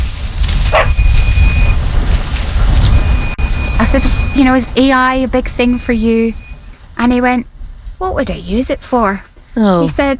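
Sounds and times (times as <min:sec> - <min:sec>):
tractor engine rumbling: 0:00.0 - 0:10.1
farmer's dog barking: 0:00.7 - 0:01.0
speech: 0:03.8 - 0:06.4, 0:07.0 - 0:10.1.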